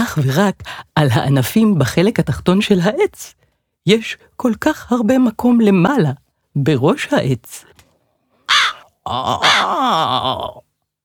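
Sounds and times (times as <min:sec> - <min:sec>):
speech: 0:00.1 - 0:07.8, 0:09.0 - 0:10.7
crow cawing: 0:08.5 - 0:10.5.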